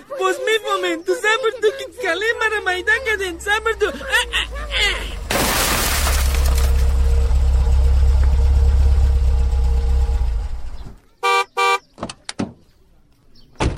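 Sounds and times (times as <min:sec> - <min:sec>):
laughter: 0:00.0 - 0:05.2
speech: 0:00.2 - 0:04.3
steady rumbling engine: 0:01.1 - 0:12.8
car window glass smashed by thrown stone: 0:05.3 - 0:06.9.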